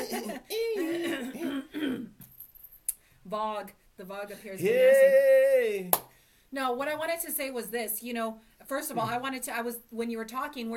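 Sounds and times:
person clearing throat in rasping bursts: 0:00.0 - 0:02.2
speech: 0:00.1 - 0:00.9, 0:03.3 - 0:10.7
quiet breathing: 0:06.1 - 0:06.6.

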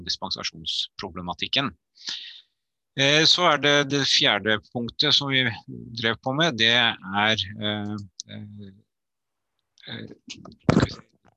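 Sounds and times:
speech: 0:00.0 - 0:02.3, 0:03.0 - 0:08.8, 0:09.9 - 0:11.1
microphone being adjusted, handling clicks: 0:10.2 - 0:11.0.

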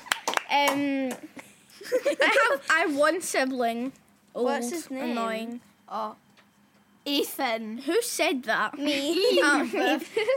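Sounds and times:
person clapping hands: 0:00.0 - 0:01.3
speech: 0:00.5 - 0:06.2, 0:07.0 - 0:10.3
laughter: 0:01.7 - 0:02.8, 0:08.8 - 0:10.3.

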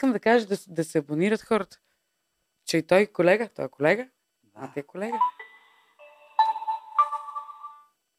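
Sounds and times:
speech: 0:00.0 - 0:01.9, 0:02.7 - 0:05.4
electronic phone ringback melody while calling: 0:05.1 - 0:08.0.

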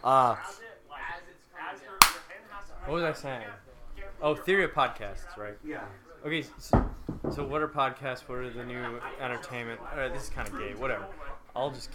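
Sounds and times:
speech: 0:00.0 - 0:00.6, 0:02.9 - 0:11.9
hand slapping a laptop trackpad: 0:02.0 - 0:02.2.

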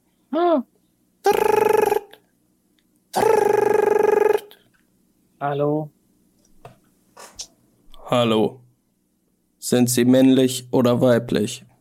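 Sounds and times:
speech: 0:00.3 - 0:00.7, 0:05.4 - 0:06.0, 0:08.1 - 0:08.6, 0:09.6 - 0:11.7
voice imitating an old-fashioned desk telephone ringing: 0:01.2 - 0:02.2, 0:03.2 - 0:04.6.

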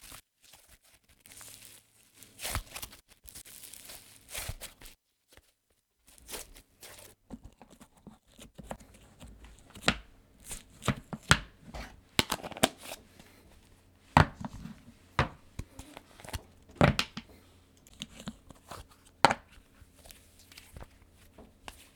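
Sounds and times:
soft tearing: 0:06.2 - 0:21.9
sticky crinkling: 0:07.5 - 0:21.9
slime being handled popping and squelching: 0:09.1 - 0:19.6.

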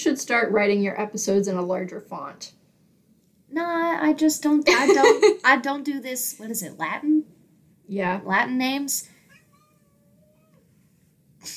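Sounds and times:
speech: 0:00.0 - 0:02.6, 0:03.5 - 0:09.1
laughter: 0:04.7 - 0:05.4
cat meowing: 0:09.3 - 0:10.7.

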